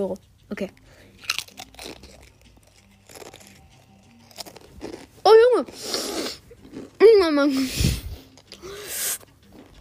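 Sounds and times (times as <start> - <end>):
speech: 0.0 - 2.0, 5.3 - 6.0, 7.0 - 8.0
crisp extremely spicy chip being bitten and chewed: 1.2 - 5.1, 6.6 - 7.0.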